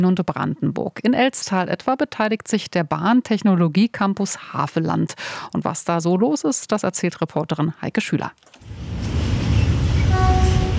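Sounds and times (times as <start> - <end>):
speech: 0.0 - 9.1
trains rumbling and rattling as locomotives are shunted and coupled to wagons: 8.7 - 10.7
train horn blast at a busy rail station: 9.8 - 10.7.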